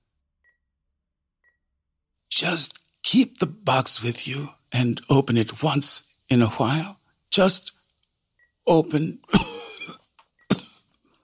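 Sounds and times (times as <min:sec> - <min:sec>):
speech: 0:02.4 - 0:07.8, 0:08.7 - 0:09.5
woman coughing: 0:09.3 - 0:10.8.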